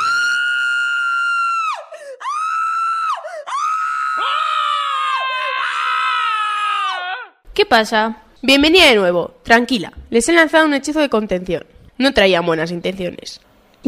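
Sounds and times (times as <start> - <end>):
loud piercing shrieking screams: 0.0 - 7.4
speech: 7.6 - 13.8.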